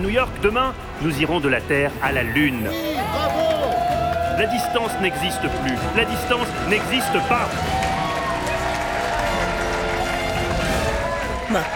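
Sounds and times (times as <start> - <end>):
speech: 0.1 - 3.5, 4.4 - 7.9, 11.5 - 11.7
large crowd applauding after a speech: 2.8 - 11.7.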